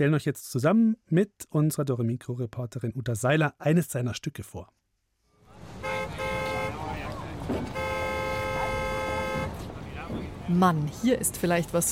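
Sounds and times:
speech: 0.0s - 4.8s, 10.5s - 11.9s
constant roar of city traffic: 5.4s - 11.9s
car horn blasts in busy city street: 5.5s - 10.1s
crowd chatter in busy city street: 5.6s - 11.9s.

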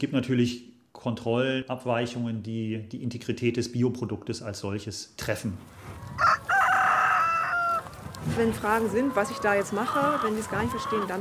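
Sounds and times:
speech: 0.0s - 6.3s, 8.3s - 11.1s
rooster crowing: 6.1s - 11.1s.

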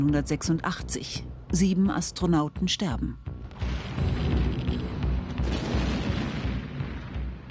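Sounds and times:
speech: 0.0s - 4.2s
explosion boom of a nuclear reactor block: 3.5s - 7.4s.

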